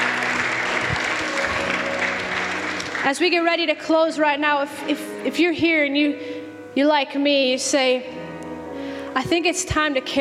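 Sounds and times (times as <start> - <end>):
large audience applauding: 0.0 - 3.2
speech: 3.1 - 8.2, 9.2 - 10.1.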